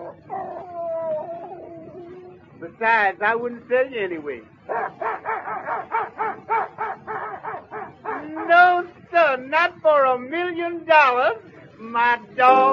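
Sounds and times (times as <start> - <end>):
injured dog whimpering and yipping: 0.0 - 2.4, 4.7 - 8.5
speech: 2.6 - 4.9, 9.4 - 12.7.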